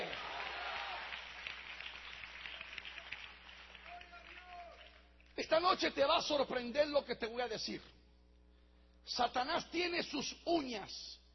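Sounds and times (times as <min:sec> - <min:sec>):
audience clapping hands in praise: 0:00.0 - 0:05.4
speech: 0:05.4 - 0:08.0, 0:09.0 - 0:11.2.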